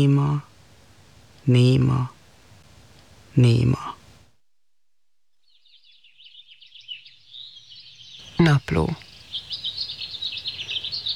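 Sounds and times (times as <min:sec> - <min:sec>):
speech: 0:00.0 - 0:00.5, 0:01.4 - 0:02.2, 0:03.4 - 0:04.0, 0:08.5 - 0:09.0
soft low hum: 0:00.0 - 0:11.1
blackbird chirping in a garden: 0:05.4 - 0:11.1.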